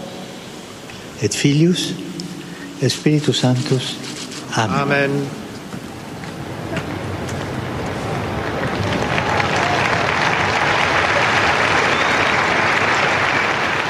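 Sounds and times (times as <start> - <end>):
speech: 1.2 - 2.1, 2.8 - 5.4
large crowd applauding at a papal general audience: 6.7 - 13.8.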